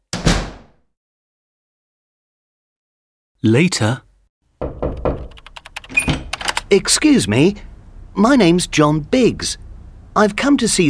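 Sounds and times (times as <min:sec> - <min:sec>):
door swinging shut against the frame with a firm thud: 0:00.1 - 0:00.8, 0:04.6 - 0:06.6
speech: 0:03.4 - 0:04.1, 0:06.7 - 0:09.6, 0:10.2 - 0:10.8.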